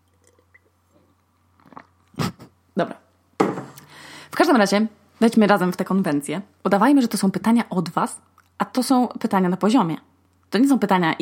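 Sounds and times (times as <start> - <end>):
low steady hum: 0.0 - 11.2
wet mouth clicks while sipping water: 0.6 - 2.4
speech: 2.8 - 3.0, 4.3 - 11.2.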